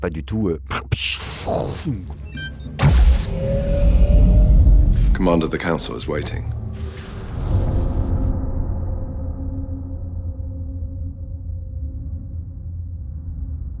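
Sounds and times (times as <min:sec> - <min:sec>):
speech: 0:00.0 - 0:02.3, 0:05.2 - 0:06.6
deep rumbling hum: 0:01.3 - 0:13.7
futuristic spaceship doors sliding open sideways with mechanical whooshes: 0:02.3 - 0:05.5.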